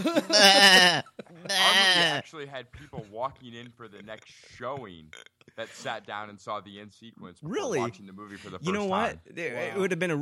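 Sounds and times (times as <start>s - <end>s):
laughter: 0.0s - 6.2s
speech: 0.0s - 10.2s
sheep bleating: 0.3s - 2.2s.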